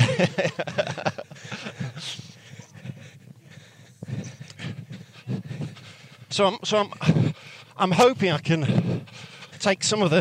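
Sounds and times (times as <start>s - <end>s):
laughter: 0.0s - 3.0s
speech: 0.2s - 2.2s, 6.4s - 10.1s
large dog panting: 1.4s - 7.8s, 8.6s - 9.6s.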